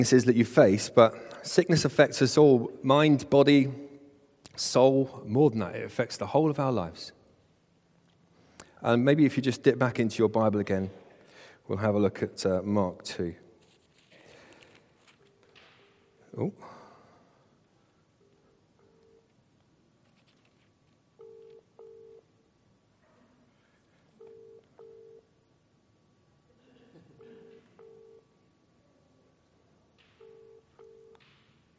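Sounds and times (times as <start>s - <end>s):
speech: 0.0s - 3.8s, 4.6s - 7.2s, 8.8s - 11.0s, 11.7s - 13.4s, 16.4s - 16.8s
DTMF tones from a phone pocket-dialing in a back pocket: 21.2s - 22.2s, 24.2s - 25.2s, 27.8s - 28.2s, 30.2s - 31.2s.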